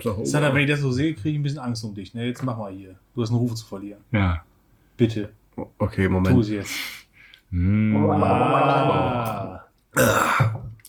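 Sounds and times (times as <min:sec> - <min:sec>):
speech: 0:00.0 - 0:10.7
person gargling liquid in the throat: 0:07.6 - 0:10.8.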